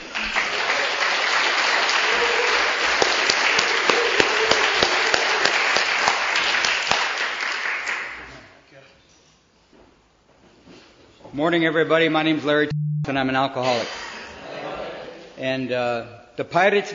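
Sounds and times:
audience applause for guest speaker: 0.0s - 8.2s
speech: 11.4s - 14.0s, 15.4s - 16.9s.

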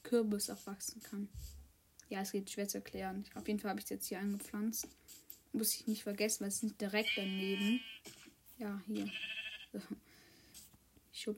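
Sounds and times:
speech: 0.1s - 10.1s, 11.2s - 11.3s
sheep bleat as it is pushed into water: 7.0s - 8.0s, 9.0s - 9.8s.

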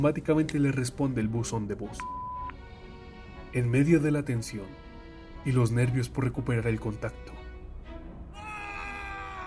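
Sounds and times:
speech: 0.0s - 2.2s, 3.6s - 4.8s, 5.4s - 7.4s
piercing sustained scream from floors below: 8.3s - 9.4s.

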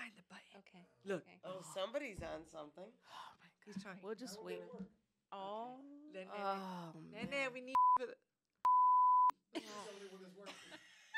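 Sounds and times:
speech: 0.3s - 8.2s, 9.5s - 11.0s
sustained electronic beep: 7.8s - 8.0s, 8.7s - 9.3s.

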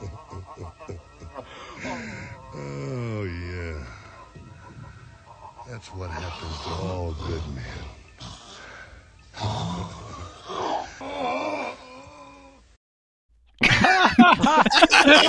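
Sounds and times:
laughter: 0.0s - 7.5s, 13.6s - 15.2s
man moaning and groaning: 1.3s - 4.9s, 5.8s - 12.8s
speech: 5.8s - 8.0s.

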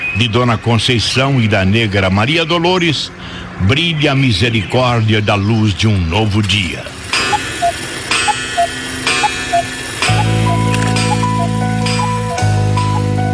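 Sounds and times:
speech: 0.2s - 7.0s
old clock ticking in a Creole manor house: 7.1s - 12.5s.

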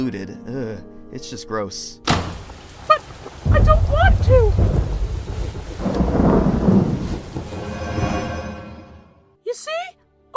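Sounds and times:
speech: 0.0s - 2.4s
steady rain hissing: 2.1s - 8.6s
deep roll of thunder: 2.4s - 8.1s.

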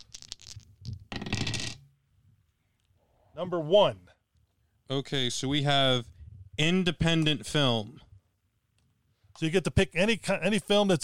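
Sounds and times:
dice clattering onto a hard tabletop: 0.8s - 1.8s
speech: 3.4s - 4.1s, 4.9s - 8.1s, 9.4s - 11.0s.

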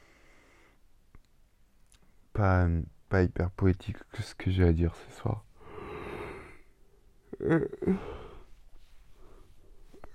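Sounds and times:
quiet breaths: 0.0s - 1.1s, 5.0s - 10.1s
speech: 2.4s - 5.5s, 7.4s - 8.2s
person yawning with groaning stretch: 7.3s - 8.4s.

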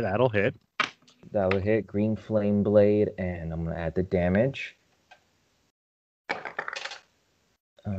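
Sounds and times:
speech: 0.0s - 4.8s
dice including an eight-sided die clattering across a hard tabletop: 6.3s - 7.1s.

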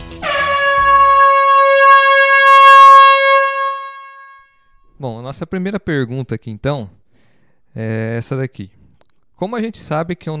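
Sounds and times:
loud sustained air horn blast: 0.0s - 4.6s
speech: 5.3s - 7.0s, 7.7s - 8.8s, 9.4s - 10.3s.

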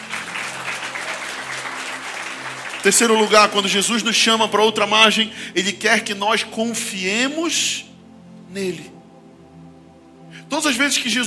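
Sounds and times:
church audience applauding: 0.0s - 4.2s
speech: 2.8s - 7.9s, 8.5s - 9.0s, 10.5s - 11.2s.

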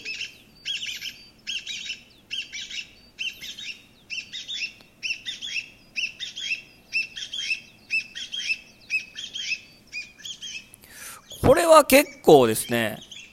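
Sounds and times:
Chinese bamboo partridge calling: 0.0s - 13.3s
speech: 11.5s - 13.0s.

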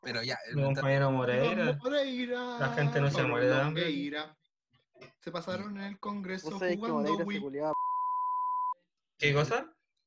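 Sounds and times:
speech: 0.0s - 4.4s, 5.0s - 7.8s, 9.2s - 9.8s
steady mid-pitched electronic beep: 7.7s - 8.8s.

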